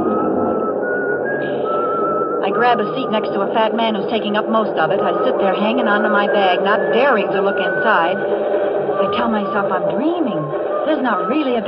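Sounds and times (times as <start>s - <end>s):
person whistling a wavering tune: 0.0s - 3.4s, 5.0s - 9.3s
crowded rumbling noise: 0.0s - 11.6s
speech: 2.5s - 11.6s.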